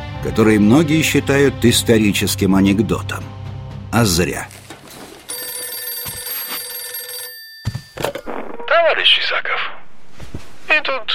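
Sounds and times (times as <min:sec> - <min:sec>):
speech: 0:00.2 - 0:04.6, 0:08.8 - 0:09.7, 0:10.7 - 0:11.1
telephone ringing with a bright sustained metallic ring: 0:05.2 - 0:08.7.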